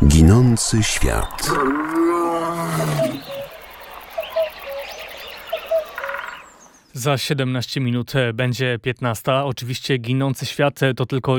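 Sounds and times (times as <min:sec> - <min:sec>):
speech: 0:00.2 - 0:02.0, 0:07.0 - 0:11.3
bird chirps: 0:00.4 - 0:07.0
lion roaring: 0:00.8 - 0:03.4.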